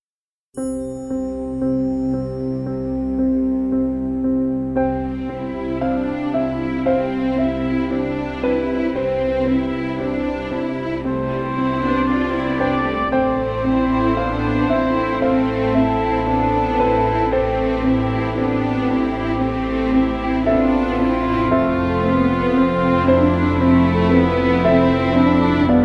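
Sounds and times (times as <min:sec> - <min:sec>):
emotive orchestral strings: 0:00.6 - 0:25.8.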